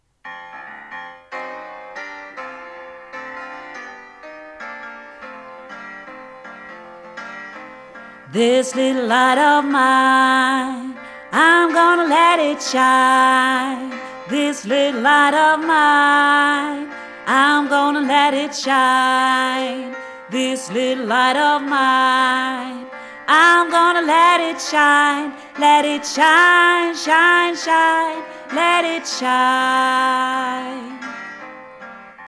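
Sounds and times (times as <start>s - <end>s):
song: 8.3s - 31.2s.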